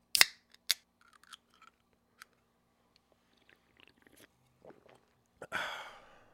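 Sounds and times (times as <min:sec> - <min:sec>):
person slurping a drink: 0:03.2 - 0:05.2
small wet mouth sounds: 0:03.2 - 0:05.3.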